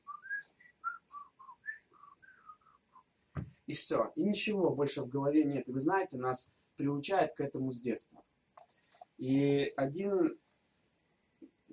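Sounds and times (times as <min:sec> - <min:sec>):
person whistling imitating wind: 0:00.0 - 0:03.0
speech: 0:03.7 - 0:08.3, 0:09.2 - 0:10.4.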